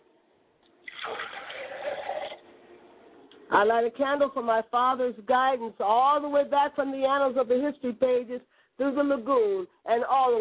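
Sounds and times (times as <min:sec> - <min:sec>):
water pouring into a glass as an offering: 0:00.8 - 0:02.4
speech: 0:03.6 - 0:10.3.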